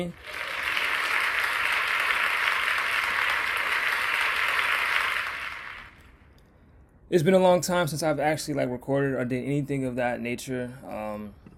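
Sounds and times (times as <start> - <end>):
speech: 0.0 - 0.5, 7.1 - 11.5
steady dense round of applause: 0.0 - 6.1.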